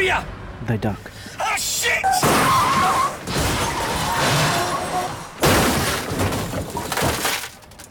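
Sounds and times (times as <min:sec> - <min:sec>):
speech: 0:00.1 - 0:01.2
car catching the road bank, flipping onto its side and sliding: 0:02.1 - 0:07.8.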